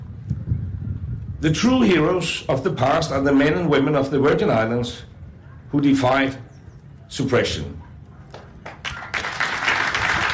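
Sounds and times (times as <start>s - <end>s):
speech: 1.4s - 5.1s, 5.7s - 6.5s, 7.1s - 7.8s
crowd applause after a speech: 8.3s - 10.3s.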